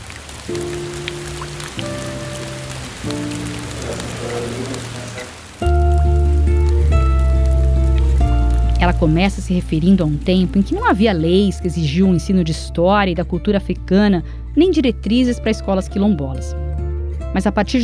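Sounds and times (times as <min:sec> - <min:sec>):
heavy rain falling: 0:00.0 - 0:12.5
speech: 0:00.5 - 0:00.7, 0:08.9 - 0:16.7, 0:17.3 - 0:17.8.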